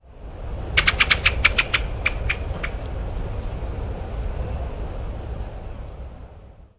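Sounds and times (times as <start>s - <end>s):
constant low traffic-like rumble in Taiwan: 0.0s - 6.7s
pale thrush sharp clicking calls in Taiwan: 0.7s - 3.2s.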